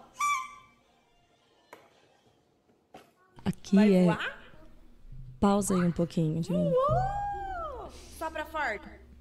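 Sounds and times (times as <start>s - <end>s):
loud toot from a toy whistle or horn: 0.2s - 0.8s
speech: 3.5s - 4.4s, 5.4s - 7.2s, 8.2s - 9.0s.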